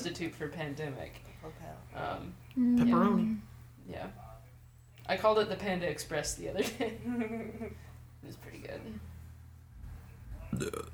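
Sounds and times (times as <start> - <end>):
speech: 0.0 - 4.3, 5.1 - 9.1, 10.5 - 10.9
low hum: 0.0 - 10.9
loud burp: 10.5 - 10.9.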